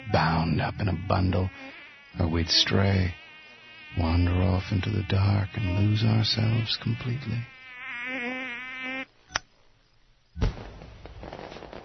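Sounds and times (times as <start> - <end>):
speech: 0.2 - 3.2, 3.9 - 8.3
sharp firework pop: 10.4 - 11.8.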